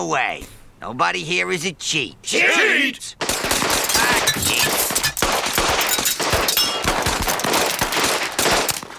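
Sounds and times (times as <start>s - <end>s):
speech: 0.0s - 3.3s
derringer pistol shots: 3.2s - 8.9s.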